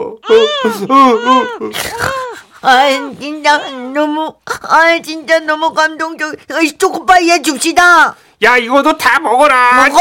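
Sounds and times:
recorded baby crying from a Christmas greeting card: 0.0 - 4.8
speech: 0.3 - 9.9.

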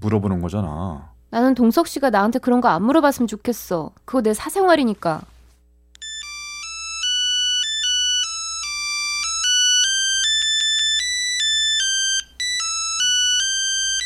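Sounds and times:
speech: 0.0 - 5.3
mobile phone ringtone with bright repeating electronic melody: 6.0 - 14.0.

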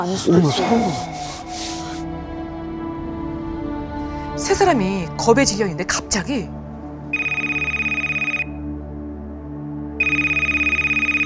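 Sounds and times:
speech: 0.0 - 1.4, 4.4 - 7.2
mobile phone ringtone for an incoming call: 7.2 - 8.6, 10.0 - 11.2.

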